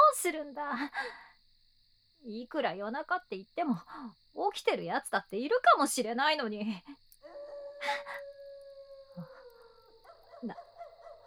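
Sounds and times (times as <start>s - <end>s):
speech: 0.2s - 1.3s, 2.2s - 8.3s, 10.4s - 10.6s
dog howling at night: 7.2s - 11.2s.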